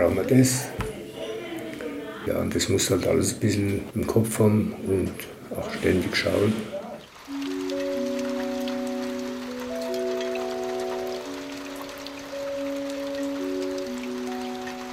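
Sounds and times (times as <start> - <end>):
speech: 0.0 - 0.9, 2.3 - 6.7
heavy rain: 5.7 - 14.9
music: 7.2 - 14.9.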